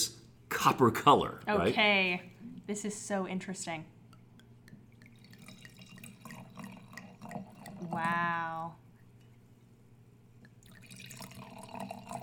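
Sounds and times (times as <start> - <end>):
room hum: 0.0 - 12.2
speech: 0.6 - 4.0, 7.9 - 8.8
wine pouring into a glass: 4.1 - 8.8, 10.5 - 12.2.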